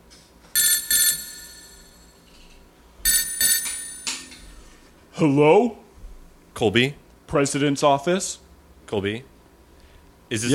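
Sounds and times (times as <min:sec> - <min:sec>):
telephone ringing with trilling bell-like tone: 0:00.6 - 0:02.2, 0:03.1 - 0:04.4
speech: 0:05.2 - 0:05.8, 0:06.6 - 0:09.3, 0:10.3 - 0:10.5.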